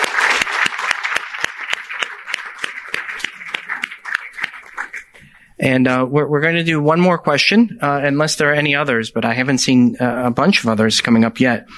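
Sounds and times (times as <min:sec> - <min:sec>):
crowd applauding: 0:00.0 - 0:05.2
speech: 0:05.6 - 0:11.7.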